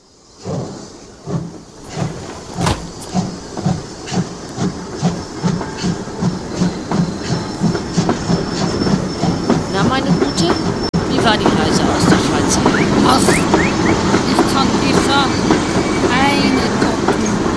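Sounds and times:
train wheels clicking over rail joints: 0.3s - 17.5s
sharp metallic clanks: 1.8s - 3.7s.

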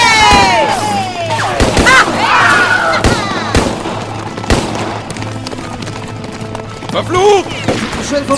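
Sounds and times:
gunshots in a shootout: 0.1s - 5.5s, 7.5s - 8.3s
speech: 8.1s - 8.3s.

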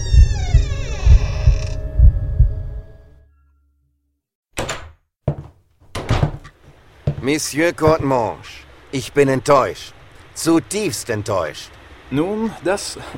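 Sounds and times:
wooden door creaking open: 0.0s - 2.0s, 4.6s - 7.2s
heavy low thumping: 0.0s - 2.9s
sharp knocks or footfalls: 4.6s - 8.2s
speech: 7.2s - 13.1s.

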